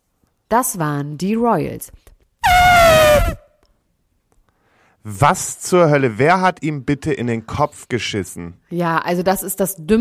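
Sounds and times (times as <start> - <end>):
speech: 0.5 - 2.1, 5.0 - 10.0
loud brassy air horn blast: 2.4 - 3.5.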